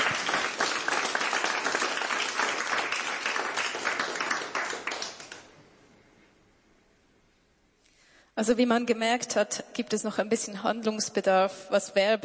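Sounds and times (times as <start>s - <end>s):
studio audience applause: 0.0s - 5.5s
speech: 8.4s - 12.2s.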